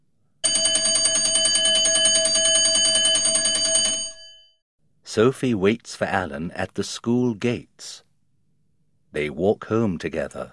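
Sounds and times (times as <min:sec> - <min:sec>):
loud electric school bell ringing at the end of the school day: 0:00.4 - 0:04.6
speech: 0:05.2 - 0:08.1, 0:09.2 - 0:10.5.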